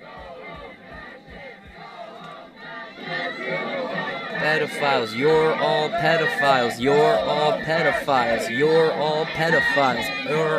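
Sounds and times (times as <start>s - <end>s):
rhythmic low stomping thumps: 0.0s - 2.6s
dense protest crowd shouting and cheering: 0.0s - 10.5s
speech: 4.4s - 10.5s.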